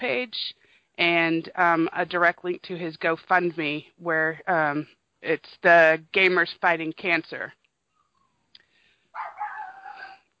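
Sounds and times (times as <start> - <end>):
speech: 0.0 - 7.6
dog barking: 9.2 - 10.2.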